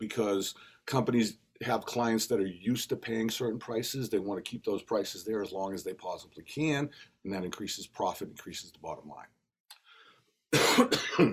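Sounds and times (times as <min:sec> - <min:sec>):
speech: 0:00.1 - 0:09.4, 0:10.5 - 0:11.3
person coughing: 0:10.5 - 0:11.3.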